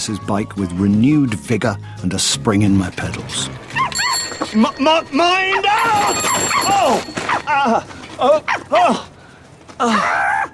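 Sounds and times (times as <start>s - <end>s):
speech: 0.0s - 9.1s, 9.8s - 10.3s
female dog barking and yipping at a cyclist beside a canal: 3.7s - 4.5s, 5.4s - 7.5s.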